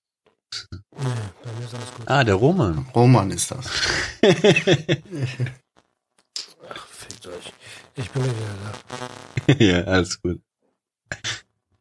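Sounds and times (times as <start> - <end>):
loud sputtering buzzy fart: 0.5 - 2.3, 5.1 - 9.7
speech: 1.7 - 5.6, 8.0 - 10.5
laughter: 3.7 - 5.6, 9.4 - 9.9.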